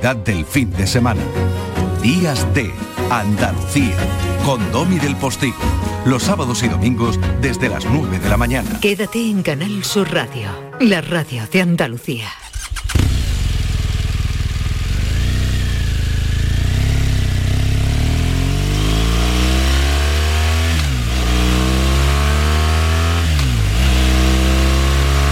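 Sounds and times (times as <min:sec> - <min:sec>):
speech: 0:00.0 - 0:12.5
BMW 1200 motorcycle engine rumbling: 0:01.1 - 0:06.6, 0:12.4 - 0:25.2.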